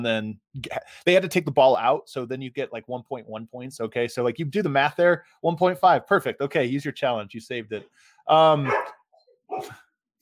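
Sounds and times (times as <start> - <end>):
speech: 0.0 - 9.0, 9.6 - 9.8
dog barking: 8.6 - 9.8.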